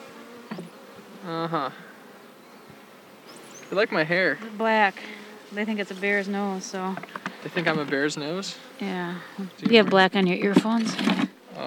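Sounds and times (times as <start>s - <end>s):
honeybees buzzing around a hive box: 0.0s - 11.6s
speech: 1.2s - 1.9s, 3.7s - 11.3s.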